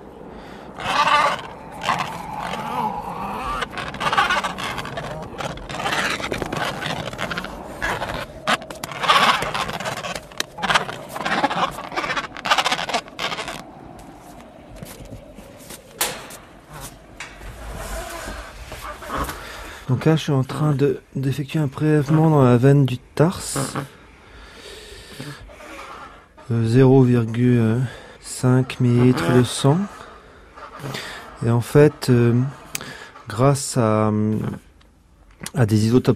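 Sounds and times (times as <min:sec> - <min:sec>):
Adélie penguin harsh bleating squawks: 0:00.7 - 0:19.8, 0:28.9 - 0:29.9, 0:30.5 - 0:33.4
scuffling and scraping of Adélie penguin being caught by hand: 0:00.8 - 0:19.9
speech: 0:20.0 - 0:24.0, 0:26.5 - 0:30.0, 0:31.4 - 0:32.6, 0:33.3 - 0:34.6, 0:35.6 - 0:36.1.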